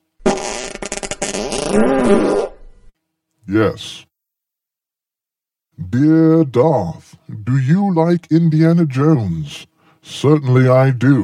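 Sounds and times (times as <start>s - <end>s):
fart: 0.2s - 2.6s
speech: 1.3s - 2.5s, 3.5s - 4.1s, 5.8s - 11.2s.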